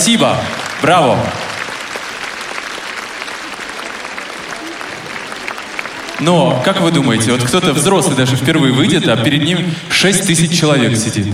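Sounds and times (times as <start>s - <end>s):
large audience applauding in a concert hall: 0.0s - 8.9s
speech: 0.1s - 1.5s, 6.2s - 11.3s.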